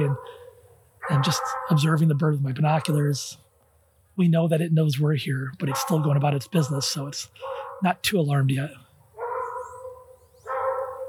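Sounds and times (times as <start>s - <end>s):
speech: 0.0s - 0.4s, 1.1s - 3.4s, 4.2s - 8.8s
dogs barking outdoors: 0.0s - 2.2s, 5.6s - 11.0s.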